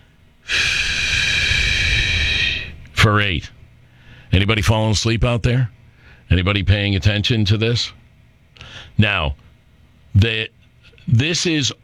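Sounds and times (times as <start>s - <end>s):
slow exhale after holding the breath: 0.4s - 2.9s, 4.0s - 4.3s, 8.6s - 9.0s
speech: 3.0s - 3.6s, 4.3s - 8.0s, 8.7s - 9.4s, 10.2s - 11.8s.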